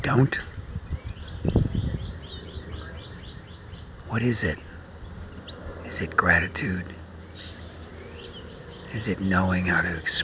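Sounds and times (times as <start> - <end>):
speech: 0.0 - 0.5, 4.1 - 4.7, 5.9 - 7.6, 8.9 - 10.2
faint high bird chirps and short song phrases: 0.0 - 10.2
low steady outdoor rumble: 0.0 - 10.2.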